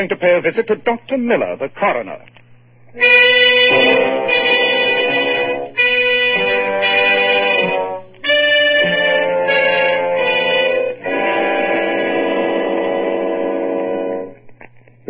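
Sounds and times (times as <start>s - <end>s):
speech: 0.0s - 4.6s
loud train horn blasts: 3.0s - 14.4s.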